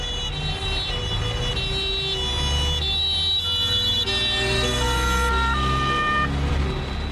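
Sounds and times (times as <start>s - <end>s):
ambulance siren wailing: 0.0s - 7.0s.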